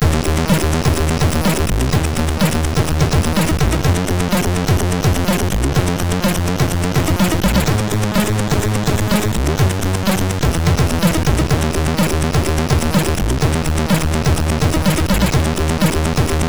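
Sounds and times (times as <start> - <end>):
bass from a MOS6581R3 SID chip: 0.0 - 16.4.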